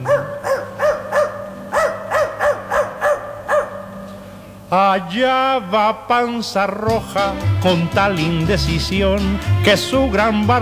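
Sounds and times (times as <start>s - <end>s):
dog barking: 0.0s - 4.3s
speech: 5.0s - 10.6s.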